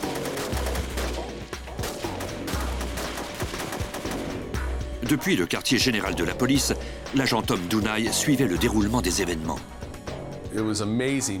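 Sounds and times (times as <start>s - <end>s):
gunfire from robbers and SWAT sniper on city streets: 0.0s - 4.6s
speech: 5.1s - 9.8s, 10.5s - 11.3s.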